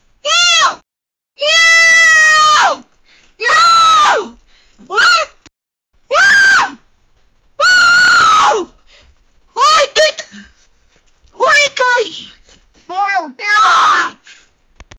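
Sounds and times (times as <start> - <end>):
frustrated woman yelling: 0.3 - 0.8, 1.4 - 2.8, 3.4 - 5.4, 7.6 - 8.8, 9.6 - 10.4, 11.4 - 12.3, 12.9 - 14.2.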